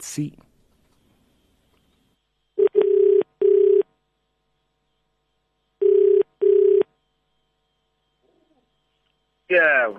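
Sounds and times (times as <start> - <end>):
speech: 0.0 - 0.5
telephone beeps from a call to a wrong number: 2.6 - 3.8, 5.8 - 6.9.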